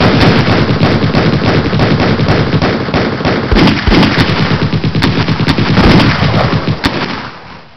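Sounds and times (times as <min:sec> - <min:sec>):
machine gun firing: 0:00.0 - 0:07.5
gunbattle: 0:00.0 - 0:07.6.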